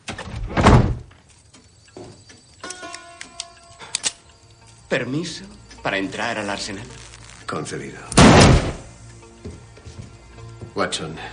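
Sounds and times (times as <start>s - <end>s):
creaking, whining door: 0.0s - 1.1s
speech: 4.9s - 8.7s, 10.8s - 11.3s.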